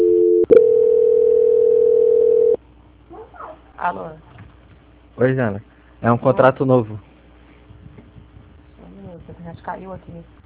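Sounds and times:
telephone dual tone during a call transfer: 0.0s - 2.6s
faint low hum: 0.0s - 10.4s
speech: 3.8s - 4.3s, 5.2s - 7.1s, 9.3s - 10.4s.

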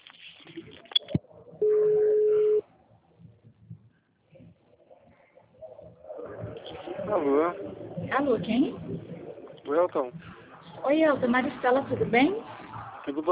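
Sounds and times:
telephone line tone beep: 1.0s - 2.6s
speech: 7.2s - 13.3s.

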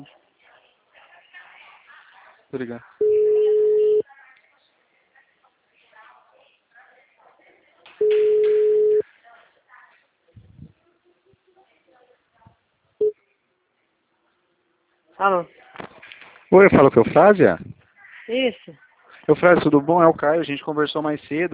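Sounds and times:
speech: 2.5s - 3.2s, 15.2s - 15.6s, 16.5s - 21.5s
ringback tone on an outgoing phone call: 3.0s - 4.0s, 8.0s - 9.0s.

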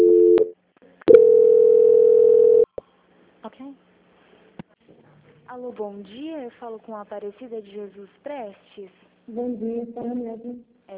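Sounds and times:
telephone tone as a customer service call is transferred: 0.0s - 0.5s, 1.1s - 2.7s
long steady loud telephone tone: 0.0s - 2.7s
speech: 5.6s - 10.9s.

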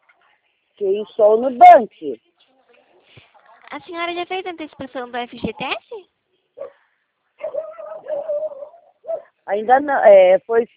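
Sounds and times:
speech: 0.8s - 2.3s, 3.7s - 6.1s, 9.5s - 10.7s
dog barking: 6.6s - 6.8s, 7.4s - 9.4s
dog whining high and wavering: 7.4s - 9.3s.

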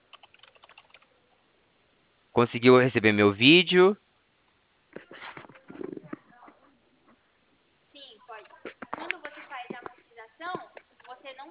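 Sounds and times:
typing on a computer keyboard: 0.0s - 1.1s
speech: 2.4s - 4.0s.

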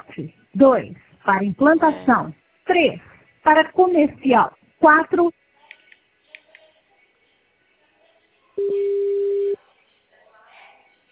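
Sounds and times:
speech: 0.2s - 5.4s
telephone tone while calling a company's support line: 8.6s - 9.6s.

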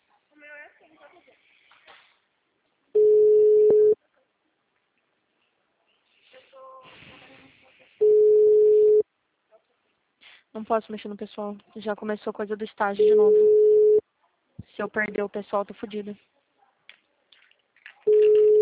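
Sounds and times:
softphone call ringing tones: 3.0s - 4.0s, 8.0s - 9.0s, 13.0s - 14.0s, 18.1s - 18.6s
speech: 10.6s - 13.6s, 14.8s - 16.4s.

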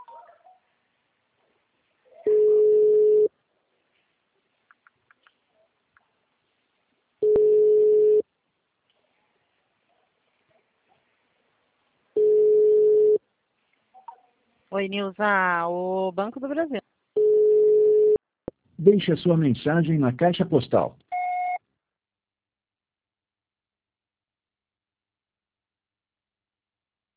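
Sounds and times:
telephone ringback tone while calling someone: 2.3s - 3.3s, 7.2s - 8.2s, 12.2s - 13.2s, 17.2s - 18.2s
speech: 14.8s - 17.0s, 18.8s - 21.0s.

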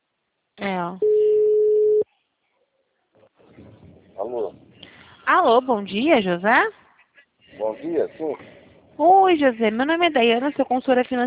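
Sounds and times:
speech: 0.6s - 1.1s, 4.2s - 4.6s, 5.3s - 6.8s, 7.6s - 11.2s
telephone ringing tone on an outgoing call: 1.0s - 2.0s.

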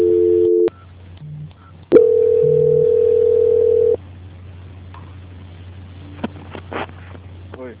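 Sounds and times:
telephone line tone during a call transfer: 0.0s - 0.9s, 1.6s - 4.0s
low hum and hiss on the telephone line: 0.0s - 7.7s.

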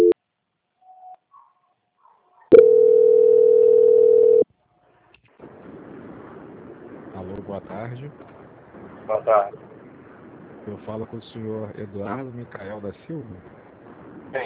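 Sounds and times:
steady mid-pitched telephone line tone during a call transfer: 2.5s - 4.4s
faint hiss: 4.6s - 14.4s
speech: 7.5s - 9.7s, 10.6s - 13.6s.

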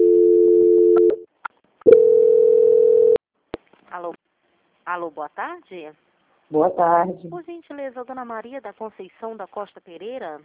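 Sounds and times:
telephone transfer tone on a bank call: 0.0s - 1.2s, 1.9s - 3.2s
speech: 4.9s - 10.4s.

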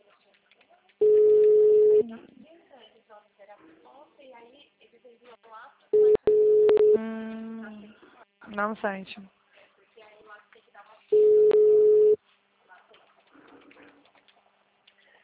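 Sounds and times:
ringback tone of an outgoing phone call: 1.0s - 2.0s, 6.0s - 7.1s, 11.2s - 12.2s
buzzier phone tone with harmonics: 6.0s - 7.6s, 11.2s - 12.2s
speech: 8.5s - 9.4s.

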